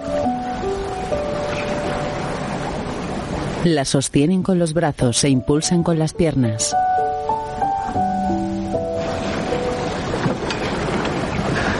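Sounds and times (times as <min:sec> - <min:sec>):
open-sea waves surging and churning: 0:00.0 - 0:04.4, 0:06.7 - 0:11.7
speech: 0:03.6 - 0:07.0.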